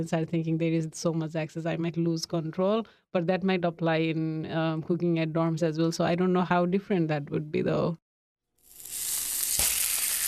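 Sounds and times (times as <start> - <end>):
speech: 0.0 - 8.0
salmon seasoned with salt and pepper sizzling in a pan: 8.6 - 10.2.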